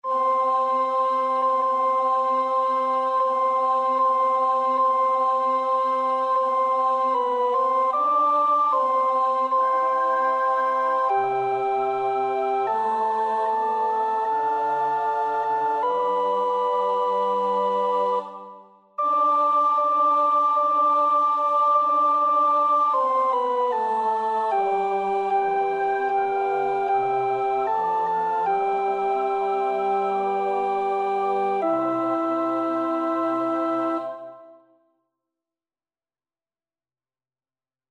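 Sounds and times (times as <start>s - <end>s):
alto voice practising a choir part: 0.0s - 34.6s.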